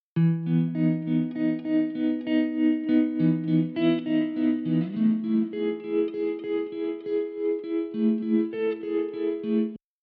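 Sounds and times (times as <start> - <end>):
electric guitar with filter effect: 0.2 - 9.8.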